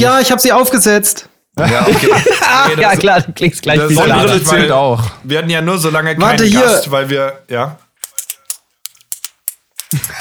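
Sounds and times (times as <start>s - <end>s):
speech: 0.0s - 7.8s, 9.9s - 10.2s
laughter: 1.6s - 4.8s, 9.9s - 10.2s
ballpoint pen clicking: 8.0s - 10.2s.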